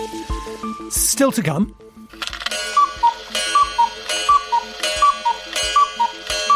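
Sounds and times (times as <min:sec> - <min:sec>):
speech: 0:00.9 - 0:01.8
cuckoo clock calling its two-note cuckoo: 0:02.2 - 0:06.5.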